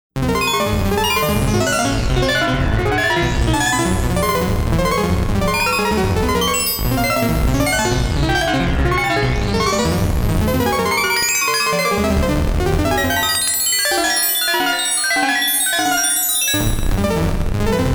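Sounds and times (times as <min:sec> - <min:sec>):
Andromeda synth arpeggio: 0:00.2 - 0:17.8.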